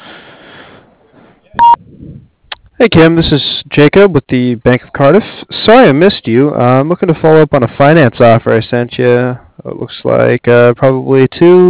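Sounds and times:
voicemail beep tone: 0:01.6 - 0:01.8
speech: 0:02.8 - 0:11.6.

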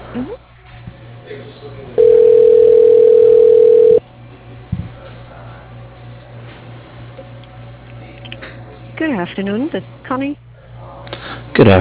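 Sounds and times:
speech: 0:00.2 - 0:00.4, 0:09.4 - 0:10.4, 0:11.6 - 0:11.7
electronic telephone tone as an office call is transferred: 0:02.0 - 0:04.0.

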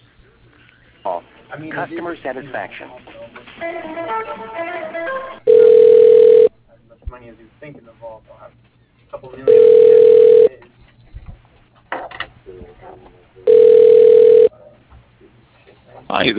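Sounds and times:
quieter voices: 0:00.0 - 0:16.3
speech: 0:01.0 - 0:05.4, 0:07.2 - 0:10.8, 0:12.5 - 0:14.7, 0:15.9 - 0:16.3
telephone ring tones over a phone line during call transfer: 0:05.5 - 0:06.5, 0:09.5 - 0:10.5, 0:13.5 - 0:14.5.

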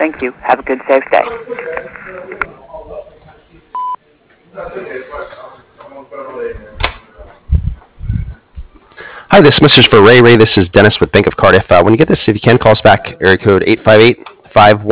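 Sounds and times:
person talking on a slightly phone line: 0:00.0 - 0:01.3
speech: 0:00.0 - 0:02.4, 0:09.3 - 0:14.8
short electronic answering machine beep: 0:03.8 - 0:04.0.

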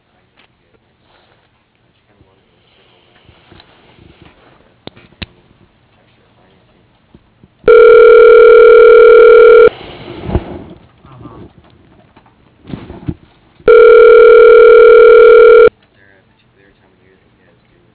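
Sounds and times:
faint irregular noise: 0:00.0 - 0:09.7, 0:13.7 - 0:17.9
telephone tones while a call is transferred to voicemail: 0:07.7 - 0:09.7, 0:13.7 - 0:15.7.

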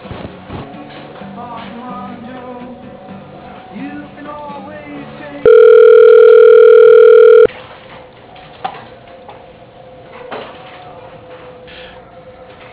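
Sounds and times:
steady telephone tone during call transfer to voicemail: 0:05.4 - 0:07.5
telephone line hiss: 0:05.5 - 0:07.5.

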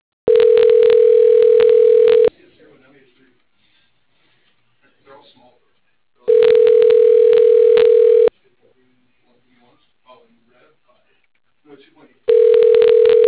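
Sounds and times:
telephone line tones during a call transfer to voicemail: 0:00.3 - 0:02.3, 0:06.3 - 0:08.3, 0:12.3 - 0:13.2.

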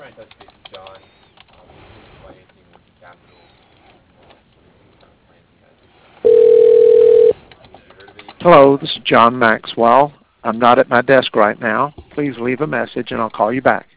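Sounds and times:
telephone ring tone while a call is transferred to voicemail: 0:06.2 - 0:07.4
speech: 0:08.4 - 0:13.9.

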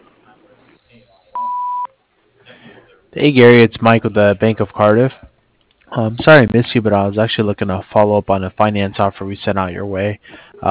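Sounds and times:
answering machine beep: 0:01.4 - 0:01.9
speech: 0:03.2 - 0:05.2, 0:05.9 - 0:10.6.

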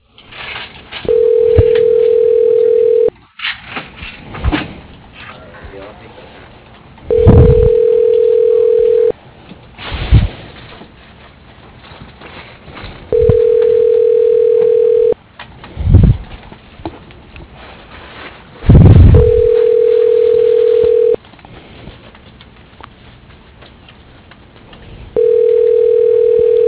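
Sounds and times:
faint noise: 0:00.0 - 0:26.6
telephone dial beeps while calling an office extension: 0:01.1 - 0:03.1, 0:07.1 - 0:09.1, 0:13.1 - 0:15.2, 0:19.2 - 0:21.2, 0:25.2 - 0:26.6.

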